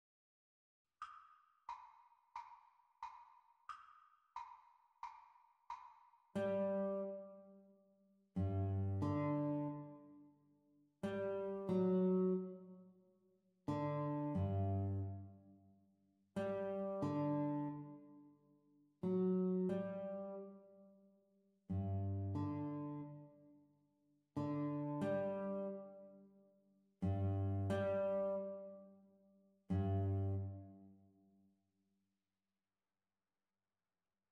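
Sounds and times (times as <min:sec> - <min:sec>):
guitar duet playalong at exam speed: 0:06.4 - 0:07.4, 0:08.4 - 0:10.0, 0:11.0 - 0:12.6, 0:13.7 - 0:15.2, 0:16.4 - 0:18.0, 0:19.0 - 0:20.6, 0:21.7 - 0:23.2, 0:24.4 - 0:26.1, 0:27.0 - 0:28.8, 0:29.7 - 0:30.7.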